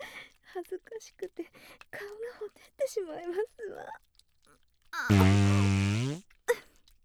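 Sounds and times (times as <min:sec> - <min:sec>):
speech: 0:00.6 - 0:04.1, 0:04.9 - 0:06.3
long low buzzing fart: 0:05.1 - 0:06.2.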